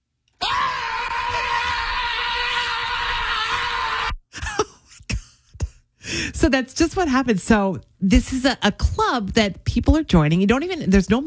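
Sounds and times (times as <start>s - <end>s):
person screaming: 0.4s - 4.6s
heavy gasping breaths: 4.3s - 7.1s
speech: 6.4s - 11.2s.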